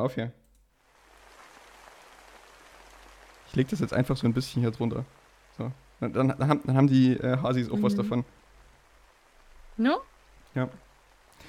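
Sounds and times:
speech: 0.0 - 0.4, 3.5 - 8.4, 9.8 - 10.8
rain on a hard surface: 0.7 - 11.4.

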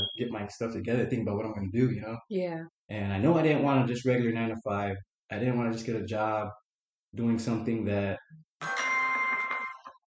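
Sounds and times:
speech: 0.2 - 8.8
mobile phone ringtone with bright electronic chiming melody: 8.6 - 10.0.

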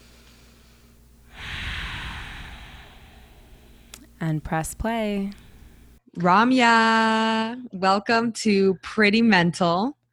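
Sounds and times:
deep breath: 0.0 - 6.0
speech: 4.2 - 5.4, 6.1 - 10.0.

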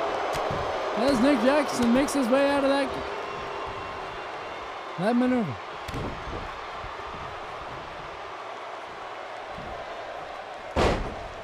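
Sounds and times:
speech: 1.0 - 3.2, 5.0 - 6.6
wrestler's body slam on a wrestling ring: 10.8 - 11.3.

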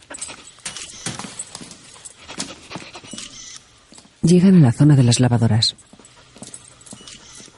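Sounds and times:
dog sniffing machinery and panting: 0.0 - 3.6, 5.7 - 7.5
speech: 4.2 - 5.9.

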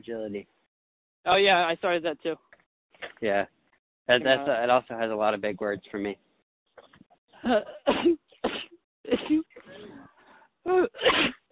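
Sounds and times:
speech: 0.0 - 0.6, 1.2 - 2.5, 3.2 - 6.2, 7.4 - 8.2, 9.0 - 9.5, 10.6 - 11.4
small sneeze over a muffled line: 7.9 - 9.5, 11.0 - 11.5.

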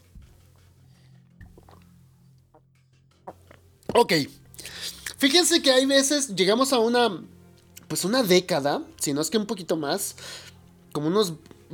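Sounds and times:
person sipping and swallowing water: 1.4 - 1.9
speech: 4.0 - 4.4, 5.2 - 11.7.

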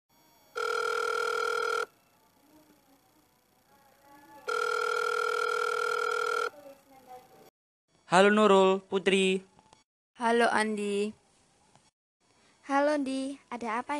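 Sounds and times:
telephone ringing back on an outgoing call: 0.2 - 3.6, 4.2 - 6.6
speech: 8.1 - 9.5, 10.2 - 11.2, 12.7 - 13.9.

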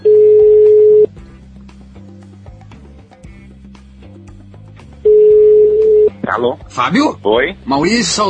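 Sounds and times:
telephone ringback tone: 0.0 - 1.1, 5.1 - 6.2
speech: 6.4 - 8.2.

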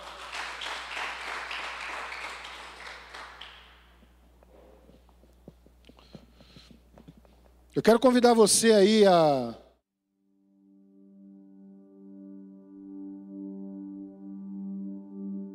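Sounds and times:
standing audience applauding: 0.0 - 6.6
speech: 7.8 - 9.6.

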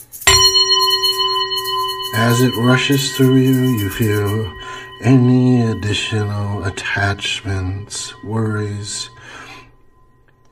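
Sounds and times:
meditation bell ringing: 0.0 - 10.5
speech: 2.2 - 9.5.

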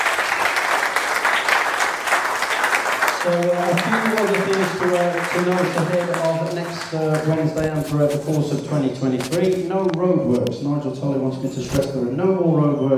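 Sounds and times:
audience applause: 0.0 - 7.8
speech: 3.2 - 12.9.

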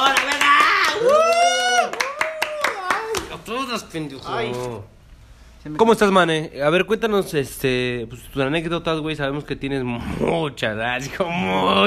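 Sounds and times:
people whooping and shouting: 0.0 - 3.3
few people clapping hands: 0.0 - 3.7
speech: 3.8 - 5.0, 5.6 - 11.8.

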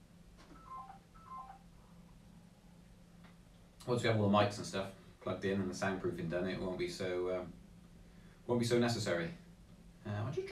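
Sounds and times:
low hum: 0.0 - 10.5
telephone ringing with electronic two-tone trill: 0.5 - 1.7
speech: 3.9 - 7.6, 8.5 - 9.4, 10.0 - 10.5.

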